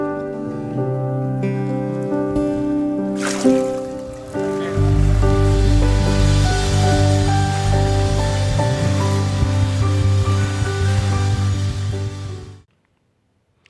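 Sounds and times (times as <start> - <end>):
steady sustained music: 0.0 - 12.7
water sloshing and rippling after baptism immersion: 3.1 - 6.6
water splashing as a person is baptized by immersion: 3.1 - 7.7.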